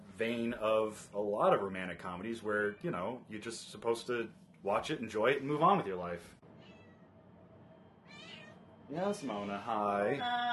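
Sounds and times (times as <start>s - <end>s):
speech: 0.2s - 6.4s, 8.9s - 10.5s
cat meowing: 6.6s - 7.1s, 8.0s - 9.5s.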